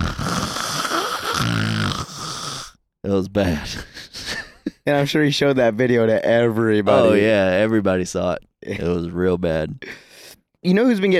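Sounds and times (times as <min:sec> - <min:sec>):
man mimicking his own log-sawing snores: 0:00.0 - 0:02.8
speech: 0:03.1 - 0:04.1, 0:04.8 - 0:10.0, 0:10.6 - 0:11.1.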